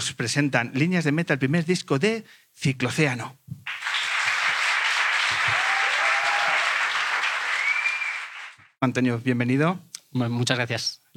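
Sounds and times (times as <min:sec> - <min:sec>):
speech: 0:00.0 - 0:03.6, 0:08.8 - 0:11.1
audience applause: 0:03.7 - 0:08.7
whistle or cheer: 0:05.4 - 0:08.6.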